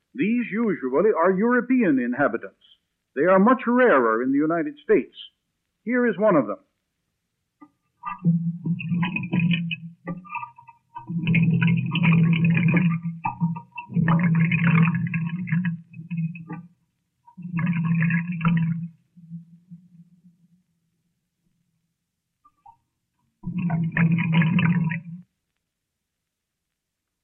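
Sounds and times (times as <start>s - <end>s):
speech: 0.2s - 6.7s, 8.1s - 9.7s
amplified water gurgling through ordinary pipe: 8.0s - 19.7s, 23.4s - 25.2s.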